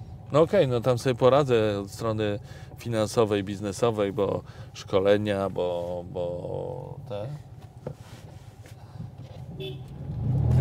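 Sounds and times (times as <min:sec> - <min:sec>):
car engine rumbling: 0:00.0 - 0:10.6
steady road traffic on Woronicza street: 0:00.0 - 0:10.6
speech: 0:00.3 - 0:08.0, 0:09.6 - 0:10.6
short car horn toot at a small car: 0:09.5 - 0:10.0.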